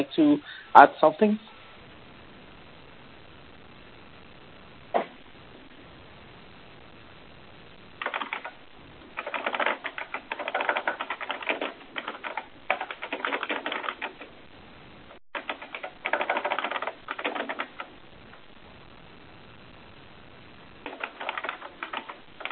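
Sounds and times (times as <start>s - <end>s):
speech: 0.0s - 1.5s
rapid keyboard typing: 8.0s - 8.6s, 9.2s - 14.3s, 15.3s - 17.9s, 20.8s - 22.5s.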